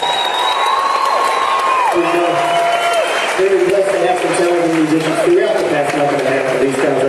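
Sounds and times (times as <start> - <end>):
sustained whistles and whoops from crowd: 0.0 - 3.5
large crowd cheering: 0.0 - 7.0
speech: 2.0 - 2.6, 3.4 - 7.0.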